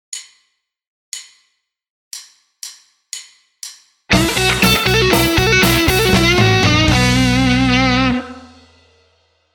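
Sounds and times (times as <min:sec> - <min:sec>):
guitar playing: 0:04.1 - 0:08.7.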